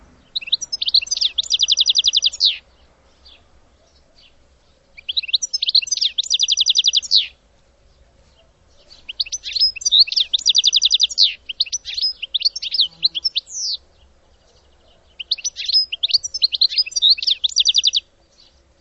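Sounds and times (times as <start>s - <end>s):
bird singing high rapid trilled phrases: 0.0s - 4.4s, 5.0s - 7.4s, 8.7s - 13.8s, 15.0s - 18.1s.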